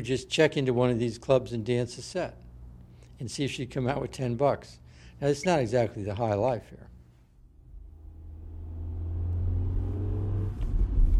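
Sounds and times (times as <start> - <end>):
speech: 0.0 - 2.4, 3.2 - 6.9
car engine rumble while driving through a tunnel at dusk: 7.5 - 11.1.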